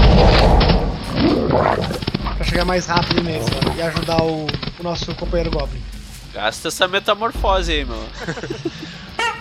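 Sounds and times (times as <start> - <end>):
large dire wolf growl sound effect: 0.0 - 2.2
speech: 2.6 - 8.7
laughter: 8.1 - 9.1.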